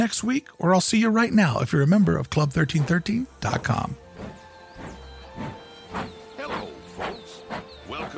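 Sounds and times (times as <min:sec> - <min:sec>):
speech: 0:00.0 - 0:04.0
steam train hissing in rhythmic bursts setting off: 0:04.1 - 0:08.1.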